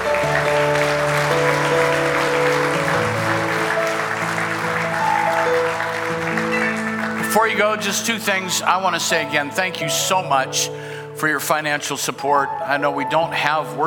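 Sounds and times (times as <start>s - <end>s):
audience applauding at a morning church service: 0.0s - 9.4s
sustained keyboard or organ chords: 0.0s - 11.8s
speech: 7.4s - 13.8s.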